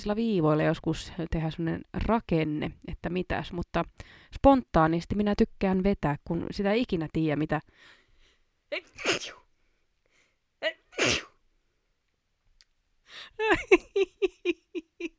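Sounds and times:
speech: 0.0s - 8.0s, 8.7s - 9.4s, 10.6s - 11.3s, 13.1s - 15.1s
person sneezing: 8.8s - 9.4s, 10.8s - 11.4s.

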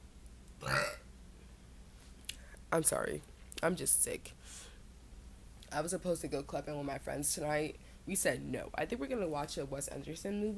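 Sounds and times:
throaty burp: 0.6s - 1.1s
speech: 2.7s - 4.7s, 5.7s - 10.5s.

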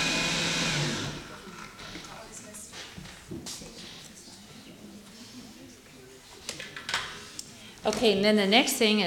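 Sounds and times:
blender running at high speed blending ingredients for homemade cheese: 0.0s - 1.6s
speech: 7.8s - 9.0s.

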